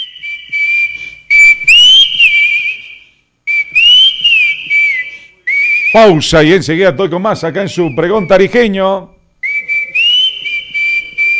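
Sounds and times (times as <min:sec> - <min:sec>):
person whistling a tune: 0:00.0 - 0:06.2, 0:09.4 - 0:11.3
faint noise: 0:00.0 - 0:11.3
speech: 0:06.0 - 0:09.1.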